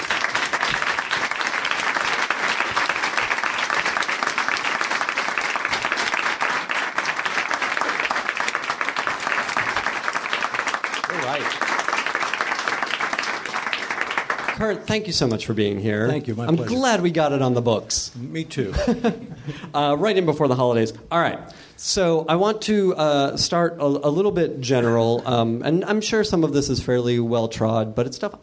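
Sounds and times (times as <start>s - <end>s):
sizable audience applauding a guest: 0.0s - 14.8s
speech: 14.6s - 28.4s
laughter: 18.7s - 19.8s.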